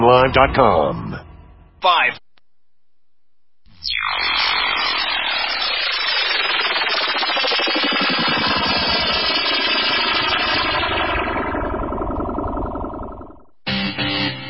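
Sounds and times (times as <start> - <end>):
speech: 0.0 - 1.2, 1.8 - 2.2
choppy rhythmic electronic bursts: 3.7 - 14.2
drone propellers buzzing: 3.7 - 14.3.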